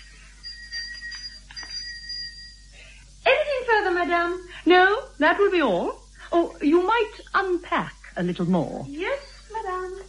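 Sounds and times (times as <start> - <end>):
servant call bell ringing in an old-fashioned house: 0.0 - 2.8, 9.0 - 9.6
speech: 4.1 - 9.3.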